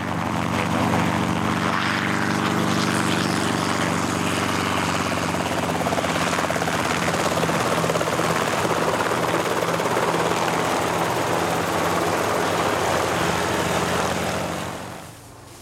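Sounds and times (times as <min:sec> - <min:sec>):
helicopter engine whine in flight: 0:00.0 - 0:15.6.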